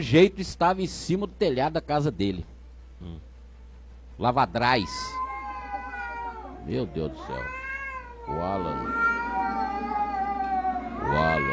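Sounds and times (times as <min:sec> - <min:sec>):
speech: 0:00.0 - 0:03.3, 0:04.2 - 0:05.2, 0:06.6 - 0:07.6, 0:08.3 - 0:09.2, 0:11.0 - 0:11.5
cat meowing: 0:04.8 - 0:11.5.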